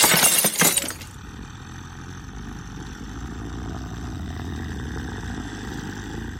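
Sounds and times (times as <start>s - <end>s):
glass smashing: 0.0s - 1.2s
steady low engine-like hum: 0.1s - 6.3s.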